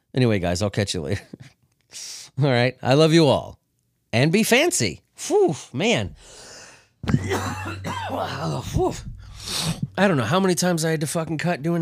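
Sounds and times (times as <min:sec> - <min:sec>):
speech: 0:00.2 - 0:11.8
low steady hum: 0:06.0 - 0:10.8
gasping catch: 0:06.2 - 0:08.4
loud coughing fit with throat-clearing: 0:07.0 - 0:10.0.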